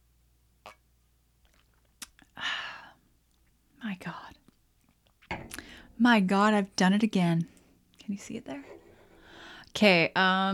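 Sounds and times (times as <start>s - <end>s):
soft lip and mouth clicks: 1.4s - 2.3s
speech: 3.9s - 4.4s, 6.0s - 7.5s, 8.1s - 8.7s, 9.8s - 10.5s.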